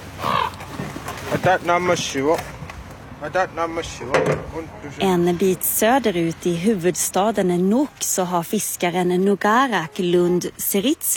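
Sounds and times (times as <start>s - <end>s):
ravens croaking on house rooftops: 0.0s - 1.2s
faint outdoor background: 0.0s - 11.1s
speech: 1.3s - 2.6s, 3.2s - 11.1s.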